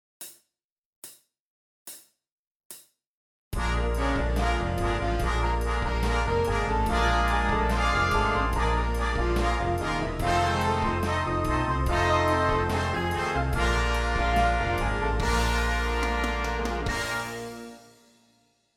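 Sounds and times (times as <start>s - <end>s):
rhythmic music: 3.6s - 17.8s.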